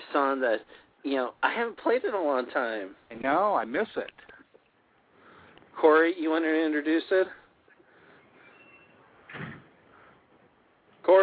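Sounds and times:
speech: 0.1s - 4.3s, 5.8s - 7.4s, 11.1s - 11.2s
door slam as someone goes out the door: 9.3s - 9.8s.

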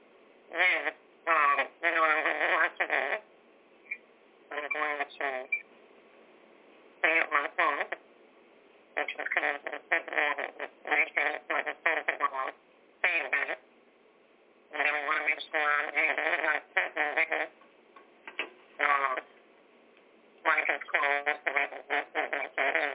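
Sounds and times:
steady static hiss on a bad phone or radio line: 0.0s - 6.1s, 6.7s - 8.1s, 8.8s - 13.7s, 14.6s - 22.9s
choppy garbled voice on a bad phone or radio line: 0.5s - 3.2s, 4.5s - 5.6s, 7.0s - 8.0s, 9.0s - 13.6s, 14.7s - 17.5s, 18.8s - 19.3s, 20.4s - 22.9s.

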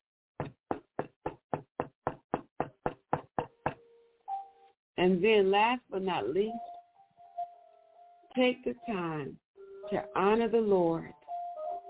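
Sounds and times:
knocking on a door: 0.4s - 3.8s
speech: 5.0s - 6.7s, 8.4s - 11.2s.

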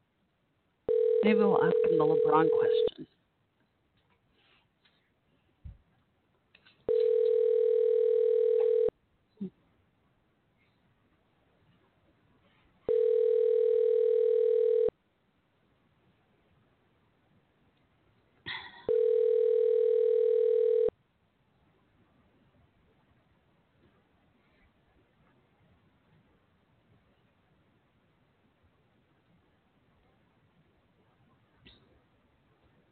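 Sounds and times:
outgoing phone call ringing tone: 0.9s - 2.9s, 6.9s - 8.9s, 12.9s - 14.9s, 18.9s - 20.9s
speech: 1.2s - 3.2s.

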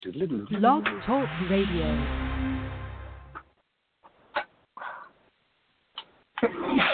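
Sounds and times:
speech: 0.1s - 2.3s
rumble: 0.8s - 3.5s
sneeze: 6.4s - 6.9s.

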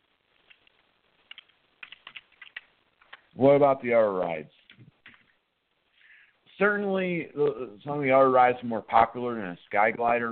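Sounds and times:
typing on a computer keyboard: 1.3s - 3.2s
speech: 3.4s - 4.6s, 6.6s - 10.3s.

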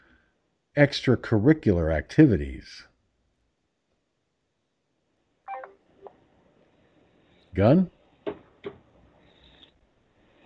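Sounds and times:
speech: 0.8s - 2.9s, 7.6s - 8.0s
telephone keypad tones: 5.5s - 5.7s.

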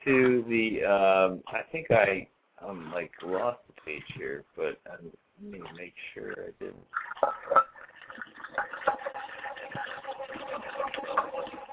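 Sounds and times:
speech: 0.0s - 7.6s
dishes clinking and clattering as they are washed: 7.0s - 7.8s.

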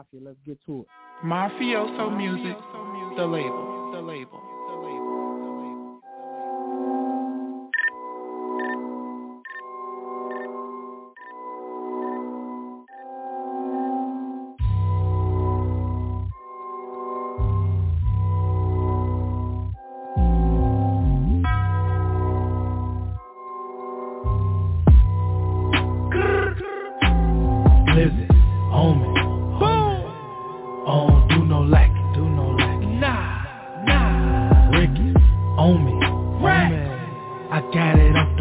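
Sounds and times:
speech: 0.0s - 4.5s
bright choppy synth melody: 0.9s - 38.3s
heavy booming bass beat: 24.4s - 26.3s, 27.0s - 30.0s, 31.1s - 33.0s, 33.9s - 36.8s, 38.0s - 38.3s.

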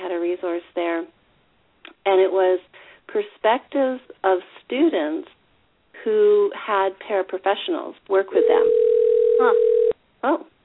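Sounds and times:
speech: 0.4s - 1.2s, 2.0s - 5.4s, 6.0s - 10.5s
telephone ringtone over a narrow phone line: 8.4s - 10.0s.

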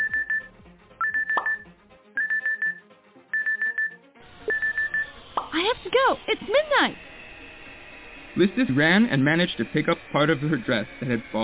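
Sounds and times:
smartphone alarm ringing with bright high beeps: 0.0s - 5.1s
speech: 6.0s - 7.1s, 8.4s - 11.4s.

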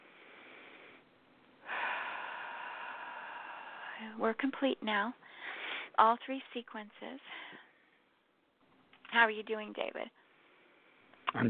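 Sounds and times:
deep breath at the close of a guided prayer session: 0.0s - 4.2s, 5.2s - 6.0s, 7.3s - 8.1s
speech: 4.0s - 5.4s, 6.0s - 7.6s, 9.1s - 10.2s.

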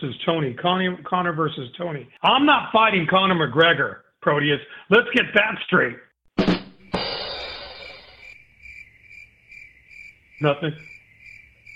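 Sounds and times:
speech: 0.0s - 6.1s, 10.4s - 10.9s
crickets chirping: 6.9s - 11.7s.

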